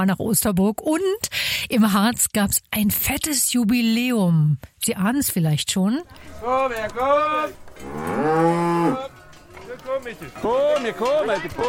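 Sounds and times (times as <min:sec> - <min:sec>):
speech: 0:00.0 - 0:09.1, 0:09.8 - 0:11.6
Harz Red Highland cattle mooing at a cow-ball festival in Tanne in the Harz: 0:06.4 - 0:09.3.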